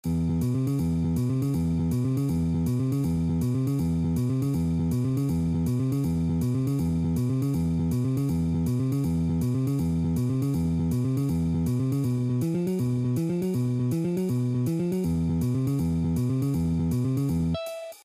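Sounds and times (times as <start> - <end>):
boogie music in E: 0.4 - 18.0.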